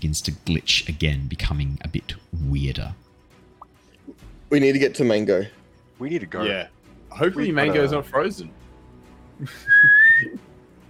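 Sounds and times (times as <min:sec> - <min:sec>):
speech: 0:00.0 - 0:03.0, 0:04.1 - 0:08.6, 0:09.4 - 0:10.4
person whistling with a slowly rising pitch: 0:09.5 - 0:10.4.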